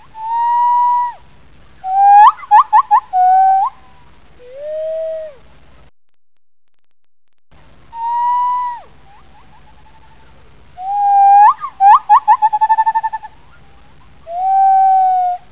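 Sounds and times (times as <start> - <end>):
male klos gibbon calling: 0.0 - 1.2, 1.8 - 5.4, 7.9 - 15.4.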